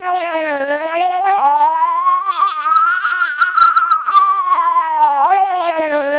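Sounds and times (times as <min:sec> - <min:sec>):
siren through low-rate vocoder: 0:00.0 - 0:06.1.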